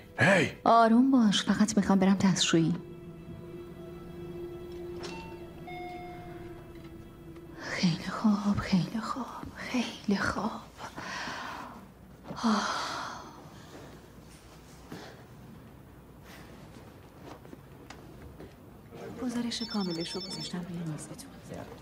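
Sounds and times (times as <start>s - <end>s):
speech: 0.2s - 2.9s, 8.2s - 10.6s, 12.4s - 12.9s, 19.2s - 21.8s
telephone ringing with warbling tone: 4.9s - 7.0s, 19.3s - 21.0s
breathing: 10.8s - 11.8s, 14.8s - 15.4s.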